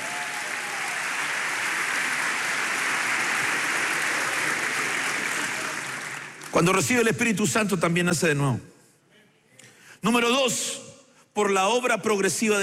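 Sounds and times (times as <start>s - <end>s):
congregation clapping hands in applause: 0.0s - 7.1s
speech: 6.5s - 8.7s, 10.0s - 10.8s, 11.4s - 12.6s.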